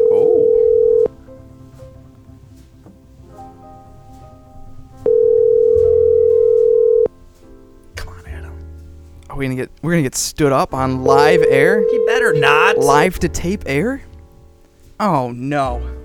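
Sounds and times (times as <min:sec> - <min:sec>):
telephone call ringback tone: 0:00.0 - 0:01.1, 0:05.1 - 0:07.1, 0:11.2 - 0:13.0
speech: 0:09.5 - 0:14.1, 0:15.0 - 0:16.0.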